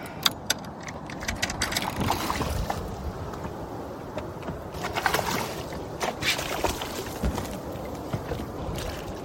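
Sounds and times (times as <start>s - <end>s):
fishing gear clicking and rattling: 0.1s - 2.5s
water splashing and sloshing as a fish is reeled into a boat: 1.7s - 3.3s, 4.4s - 9.2s.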